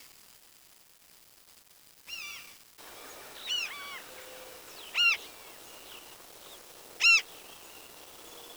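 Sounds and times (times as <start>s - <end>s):
bird calls sliding downward: 2.8s - 8.5s.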